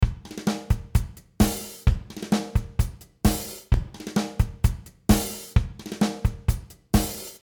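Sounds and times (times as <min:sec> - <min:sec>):
drum: 0:00.0 - 0:07.4.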